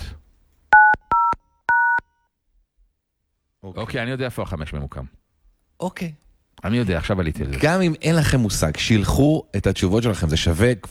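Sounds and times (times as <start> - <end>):
telephone keypad dual-pitched tones: 0.8 - 2.0
speech: 3.7 - 5.2, 5.8 - 10.8.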